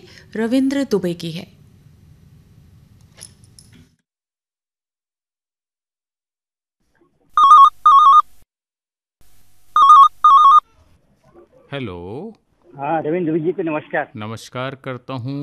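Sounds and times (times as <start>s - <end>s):
speech: 0.3s - 1.6s, 11.8s - 15.4s
telephone ringing with electronic trills for a radio phone-in call in Jabalpur India: 7.4s - 8.3s, 9.8s - 10.7s.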